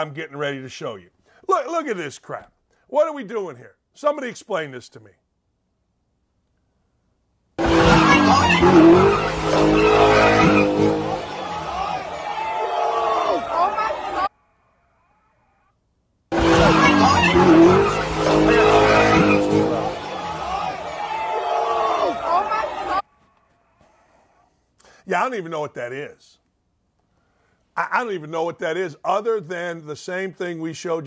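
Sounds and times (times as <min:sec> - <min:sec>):
speech: 0:00.0 - 0:05.2, 0:25.1 - 0:26.4, 0:27.8 - 0:31.0
revving engines at a car meetup: 0:07.6 - 0:12.2, 0:16.3 - 0:20.9
screeching tires at a car meetup: 0:07.6 - 0:12.5, 0:16.3 - 0:21.3
crowd shouting at a car meetup: 0:07.6 - 0:14.4, 0:16.3 - 0:23.1.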